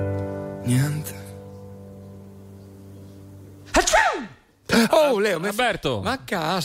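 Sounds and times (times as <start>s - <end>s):
speech: 0.7s - 1.2s, 5.1s - 6.6s
person sneezing: 3.7s - 4.8s.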